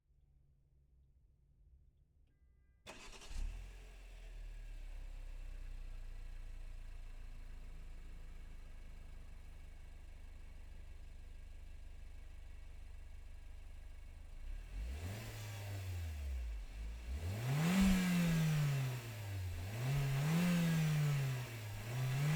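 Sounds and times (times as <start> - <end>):
2017 Toyota C-HR Turbo engine starting: 2.9 - 22.3
2017 Toyota C-HR Turbo engine revving blips: 14.7 - 22.3.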